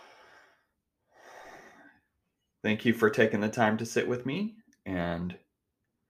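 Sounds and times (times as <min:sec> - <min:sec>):
deep heavy breath: 0:00.0 - 0:02.0
speech: 0:02.6 - 0:05.4.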